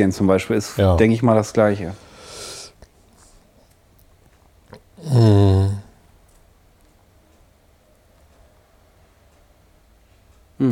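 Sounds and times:
speech: 0:00.0 - 0:02.0, 0:05.0 - 0:05.8
quiet hiss: 0:00.0 - 0:10.7
analog clock ticking: 0:06.1 - 0:10.7.

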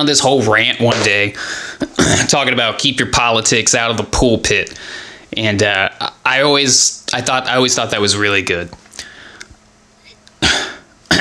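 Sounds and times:
speech: 0:00.0 - 0:08.8
man coughing: 0:01.0 - 0:02.5, 0:10.4 - 0:11.2
man clearing his throat: 0:01.8 - 0:02.4, 0:10.4 - 0:11.2.

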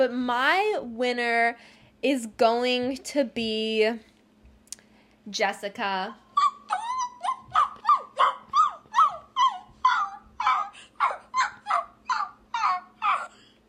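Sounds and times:
speech: 0:00.0 - 0:04.1, 0:05.3 - 0:06.2
person imitating whimpering shelter dogs: 0:06.3 - 0:13.4.

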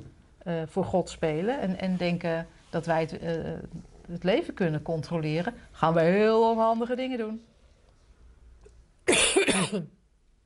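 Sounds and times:
speech: 0:00.4 - 0:07.5, 0:09.1 - 0:10.0
person coughing: 0:09.1 - 0:10.0.

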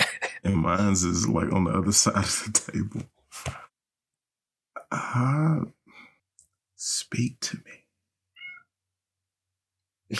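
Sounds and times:
speech: 0:00.5 - 0:03.6, 0:04.9 - 0:05.8, 0:06.8 - 0:07.8
cat meowing: 0:08.3 - 0:08.7.

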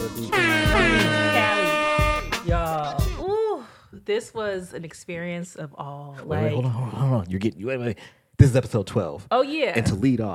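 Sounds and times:
speech: 0:00.2 - 0:00.5, 0:04.1 - 0:10.3
loud brassy air horn blasts: 0:00.2 - 0:02.5.

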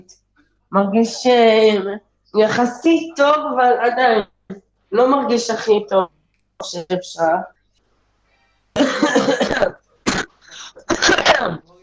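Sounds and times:
speech: 0:00.0 - 0:07.6, 0:08.8 - 0:09.8
sick person coughing at home: 0:08.8 - 0:11.6.

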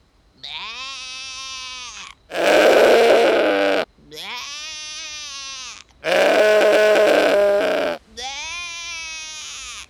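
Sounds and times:
billy goat in a pen bleating loudly and raggedly: 0:02.3 - 0:03.8, 0:06.0 - 0:09.3
person imitating a goat bleat: 0:02.3 - 0:03.8, 0:06.1 - 0:08.6.

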